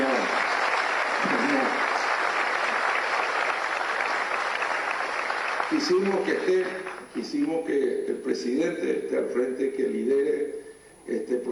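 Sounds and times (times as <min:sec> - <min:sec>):
audience applause for a president at a public gathering: 0:00.0 - 0:07.2
speech: 0:05.8 - 0:11.4.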